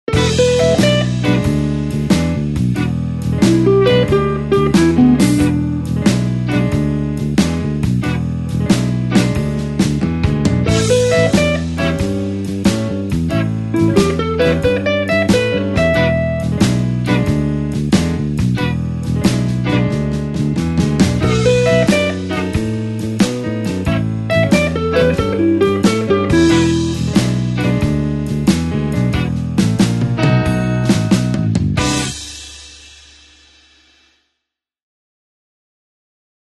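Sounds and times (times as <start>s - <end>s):
blues shuffle solo in E with call and response: 0.1s - 32.7s.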